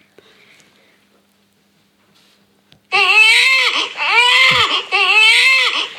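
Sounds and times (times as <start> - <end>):
baby wailing loudly: 2.9 - 5.9.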